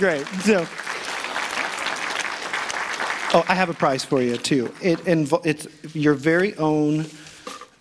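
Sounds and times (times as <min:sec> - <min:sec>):
speech: 0:00.0 - 0:00.9, 0:03.3 - 0:07.2
audience applause: 0:00.0 - 0:05.0.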